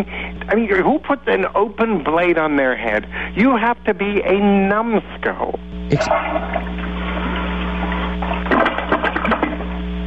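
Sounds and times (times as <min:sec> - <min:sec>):
speech: 0:00.0 - 0:06.7
low hum: 0:05.6 - 0:10.0
toilet flushing: 0:06.1 - 0:09.8.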